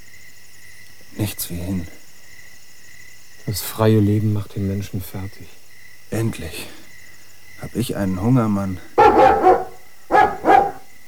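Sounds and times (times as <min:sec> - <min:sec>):
speech: 0:01.2 - 0:02.0, 0:03.4 - 0:06.8, 0:07.6 - 0:09.5
dog barking: 0:09.0 - 0:10.9.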